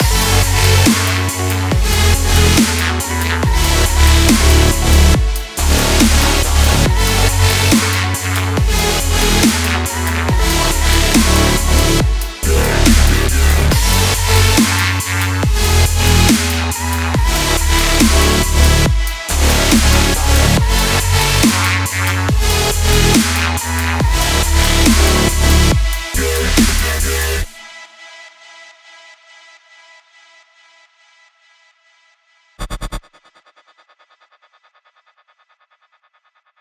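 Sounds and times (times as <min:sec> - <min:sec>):
future dubstep music: 0:00.0 - 0:27.6, 0:32.6 - 0:33.2.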